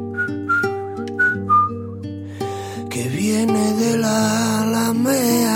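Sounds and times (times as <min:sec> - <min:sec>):
soft whistling tune of gliding notes: 0:00.0 - 0:02.0
speech: 0:03.0 - 0:05.4.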